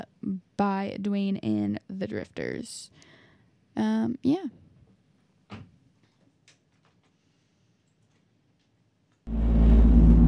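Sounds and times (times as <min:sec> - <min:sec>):
speech: 0:00.6 - 0:03.1, 0:03.8 - 0:04.6
car tires running over a road rumble strip: 0:09.3 - 0:10.2.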